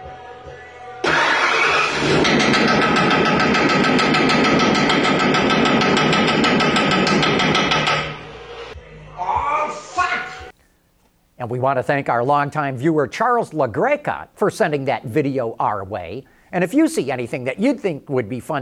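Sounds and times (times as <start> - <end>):
truck engine roaring with harsh metallic knocking: 1.0 - 8.4
speech: 11.5 - 18.6.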